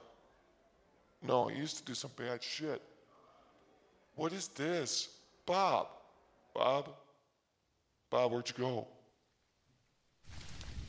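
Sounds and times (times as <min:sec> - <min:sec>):
speech: 0:01.2 - 0:02.9, 0:04.2 - 0:06.0, 0:06.6 - 0:07.0, 0:08.1 - 0:09.0
rain falling: 0:10.2 - 0:10.8.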